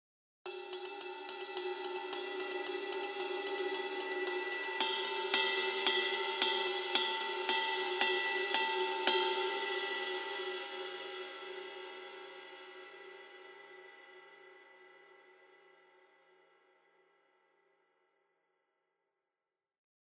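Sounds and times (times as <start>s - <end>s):
21-inch ride cymbal: 0.5s - 13.0s.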